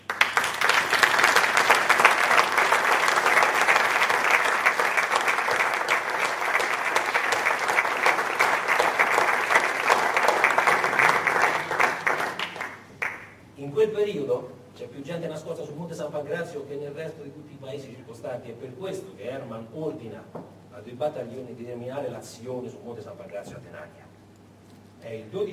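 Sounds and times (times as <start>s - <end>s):
audience applause for a guest at a public talk: 0.0s - 13.4s
speech: 15.0s - 24.1s, 25.0s - 25.5s.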